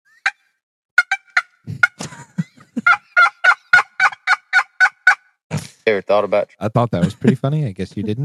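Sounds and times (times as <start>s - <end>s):
person imitating a turkey gobble: 1.0s - 5.2s
laughter: 1.7s - 4.0s, 6.8s - 8.2s
speech: 5.9s - 8.2s.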